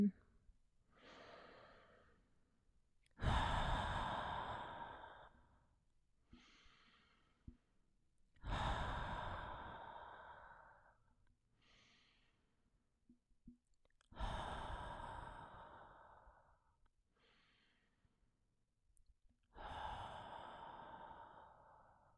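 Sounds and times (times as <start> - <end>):
deep breathing during a meditation: 0.9 - 2.3, 3.2 - 5.6, 6.3 - 7.7, 8.4 - 12.5, 14.1 - 18.1, 19.6 - 22.1.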